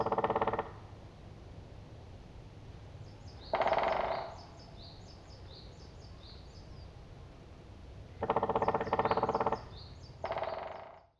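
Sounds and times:
black woodpecker rattling calls: 0:00.0 - 0:00.9, 0:03.1 - 0:06.7, 0:08.1 - 0:11.1.

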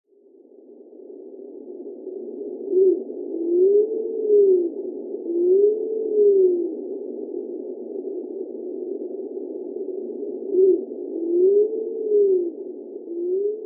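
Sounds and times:
Japanese wood pigeon: 0:02.7 - 0:06.8, 0:10.5 - 0:13.6.

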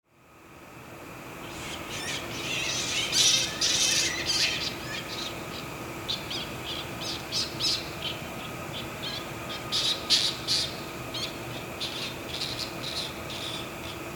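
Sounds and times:
low constant hum: 0:00.1 - 0:14.1
Ryukyu flying fox calls in Oshiro, Itoman: 0:01.4 - 0:14.0.

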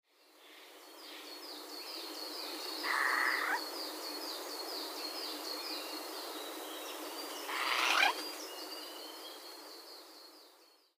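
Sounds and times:
Eurasian Jay calling: 0:02.8 - 0:03.6, 0:07.5 - 0:08.2.

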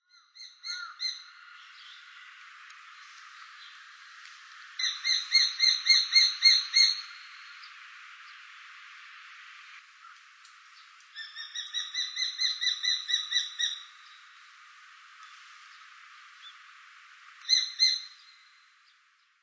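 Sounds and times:
Japanese sparrowhawk calling in Utsunomiya: 0:00.2 - 0:02.0, 0:04.8 - 0:07.8, 0:11.2 - 0:14.2, 0:17.4 - 0:18.5.

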